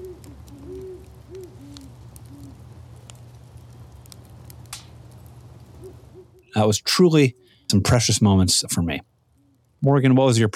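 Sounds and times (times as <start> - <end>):
owls hooting in a backyard at night: 0.0 - 2.6, 5.8 - 6.6
backyard fire crackling and popping: 0.0 - 10.5
speech: 6.6 - 9.1, 9.8 - 10.5.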